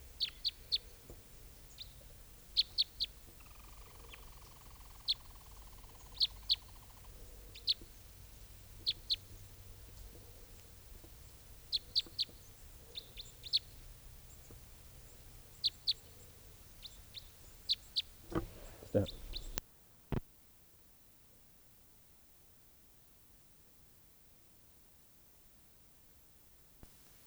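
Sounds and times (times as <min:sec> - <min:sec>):
family of type 5 birds chirping: 0:00.0 - 0:19.6
low steady background: 0:00.0 - 0:19.6.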